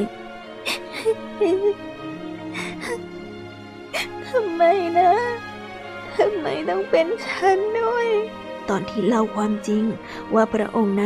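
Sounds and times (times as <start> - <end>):
speech: 0.0 - 2.0, 4.0 - 5.5, 6.2 - 11.0
voice acting out a bride sobbing and crying: 0.7 - 3.1, 4.0 - 4.6
sharp breathy gasps: 2.4 - 3.1.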